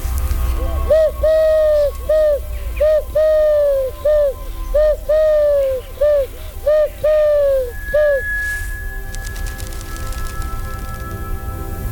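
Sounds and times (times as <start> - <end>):
faint outdoor background: 0.0 - 11.8
bird hooting coos from a tree: 0.7 - 8.8.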